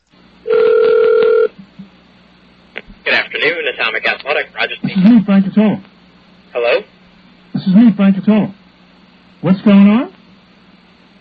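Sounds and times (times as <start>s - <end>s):
ringback tone on an outgoing phone call: 0.5s - 1.5s
speech: 3.4s - 5.9s, 7.6s - 8.6s, 9.4s - 10.1s.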